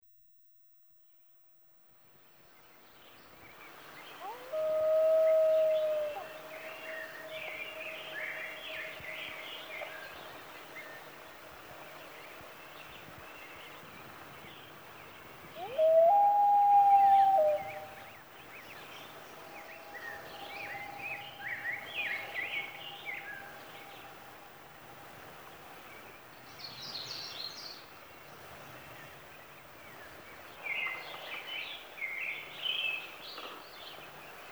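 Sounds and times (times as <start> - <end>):
morning songbird chorus: 2.2 - 34.5
loon wails: 4.2 - 6.7, 15.6 - 18.0.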